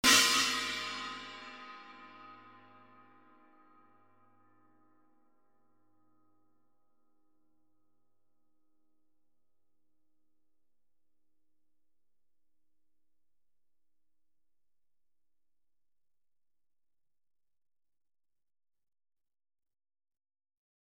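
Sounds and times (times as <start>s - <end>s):
14-inch mini china cymbal hit: 0.0s - 2.8s.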